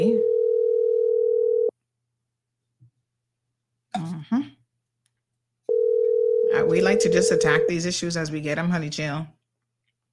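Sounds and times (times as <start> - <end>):
telephone dial tone while placing a call: 0.2 - 1.7, 5.7 - 7.7
speech: 7.0 - 9.4.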